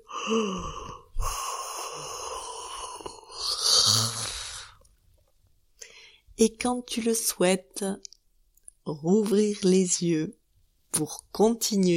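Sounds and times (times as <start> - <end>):
person yawning: 0.0 - 4.8
speech: 0.3 - 1.4, 6.4 - 8.1, 8.8 - 11.9.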